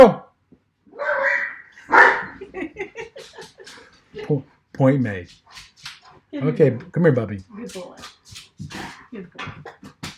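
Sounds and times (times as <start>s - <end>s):
speech: 0.0s - 0.2s, 4.2s - 5.7s, 6.3s - 10.0s
German Shepherd barking excitedly at a high pitch: 1.0s - 2.5s
laughter: 2.3s - 4.4s.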